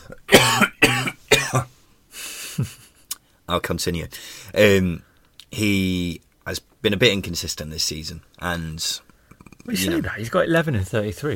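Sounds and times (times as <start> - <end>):
person coughing harshly: 0.0 - 1.7
speech: 1.5 - 1.7, 3.5 - 11.3.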